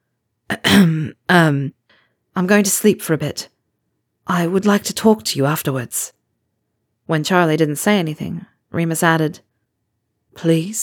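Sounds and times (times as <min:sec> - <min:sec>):
person clearing throat: 0:00.5 - 0:01.2
speech: 0:01.0 - 0:01.8, 0:02.4 - 0:03.5, 0:04.3 - 0:06.2, 0:07.1 - 0:09.5, 0:10.4 - 0:10.8.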